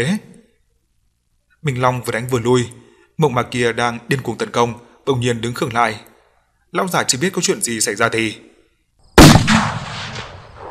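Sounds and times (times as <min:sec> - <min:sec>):
speech: 0:00.0 - 0:00.3, 0:01.6 - 0:06.1, 0:06.7 - 0:08.5
series of explosions: 0:09.2 - 0:10.6.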